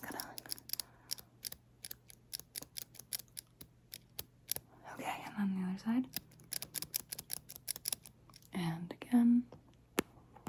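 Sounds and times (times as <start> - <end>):
eyelash curler clicking: 0.0 - 4.7, 6.0 - 8.5
faint steady hum: 0.0 - 10.4.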